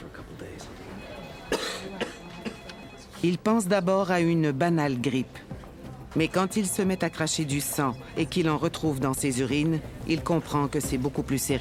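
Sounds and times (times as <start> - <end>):
low murmur: 0.0 - 11.5
man with headache, exhaustion and moderate fever coughing dryly: 1.5 - 2.7
speech: 3.2 - 5.4, 6.1 - 11.5.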